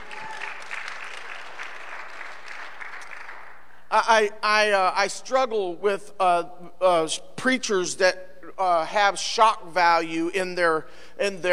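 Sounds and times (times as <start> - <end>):
audience clapping for the Lord: 0.0 - 3.6
speech: 3.9 - 11.5.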